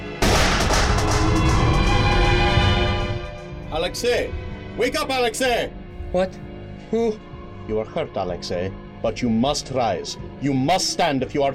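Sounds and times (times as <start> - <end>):
gunshot: 0.2 - 3.1
speech: 3.9 - 11.5.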